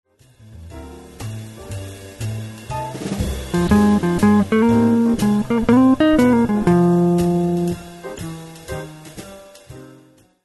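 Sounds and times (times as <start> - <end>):
jazz blues guitar: 3.5 - 9.0.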